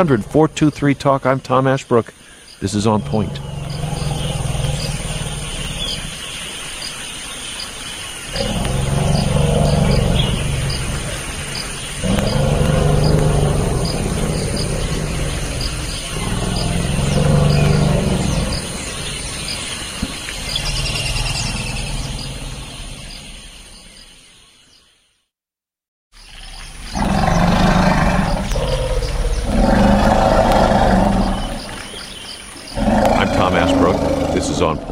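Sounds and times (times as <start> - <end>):
speech: 0.0 - 3.8
steady high whine of insects: 0.0 - 24.6, 26.2 - 34.8
two forest elephants greeting each other with rumbling roars and squeals: 2.9 - 6.4, 8.3 - 23.2, 26.9 - 31.9, 32.7 - 34.8.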